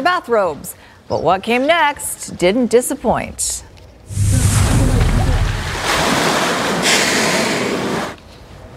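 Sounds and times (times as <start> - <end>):
speech: 0.0 - 4.3
humpback whales breaching and splashing while bubble-net feeding: 4.1 - 8.2.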